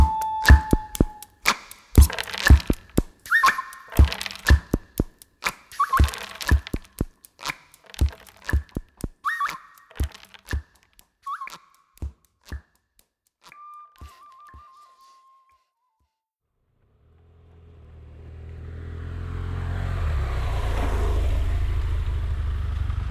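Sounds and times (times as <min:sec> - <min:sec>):
brief wavering whistle-like tone: 0:00.0 - 0:01.3, 0:03.3 - 0:04.8, 0:05.7 - 0:07.0, 0:08.5 - 0:12.1, 0:13.5 - 0:16.2
sharp clicks at a bus station: 0:00.0 - 0:14.7
heavy engine approaching: 0:17.0 - 0:23.0
low traffic rumble at a bus station: 0:17.0 - 0:23.0.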